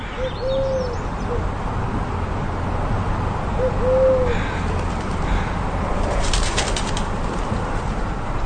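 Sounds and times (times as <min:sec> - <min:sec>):
collared dove cooing: 0:00.0 - 0:01.5, 0:03.6 - 0:04.6
outdoor noise in Alaska heard through an open window: 0:00.0 - 0:08.4
collared doves' wingbeats fluttering: 0:04.7 - 0:05.3, 0:06.0 - 0:08.0.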